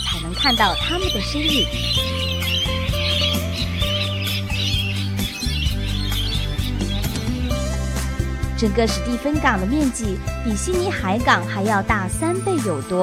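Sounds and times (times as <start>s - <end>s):
Australian parrots squawking at a sunrise lookout in Port Stephens: 0.0s - 7.9s, 10.7s - 11.3s
birds chirping at a sunrise lookout in Port Stephens Australia: 0.0s - 13.0s
speech: 0.3s - 2.4s, 8.6s - 13.0s.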